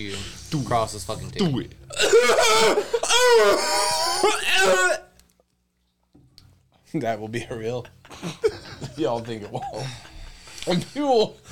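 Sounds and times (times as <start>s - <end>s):
speech: 0.0s - 5.0s, 6.9s - 11.5s
person coughing hard after first attempt at smoking a joint: 1.9s - 4.7s.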